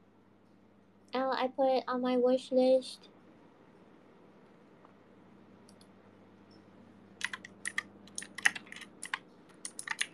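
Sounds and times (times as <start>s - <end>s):
faint steady hum: 0.0s - 10.1s
speech: 1.2s - 3.1s
computer keyboard typing: 7.2s - 10.1s.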